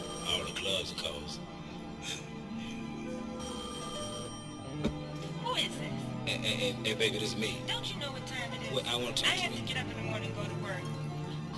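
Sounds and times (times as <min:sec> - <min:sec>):
telephone ringing with bell-like trills: 0:00.0 - 0:01.4, 0:03.0 - 0:05.8
speech: 0:00.4 - 0:02.2, 0:06.3 - 0:11.0.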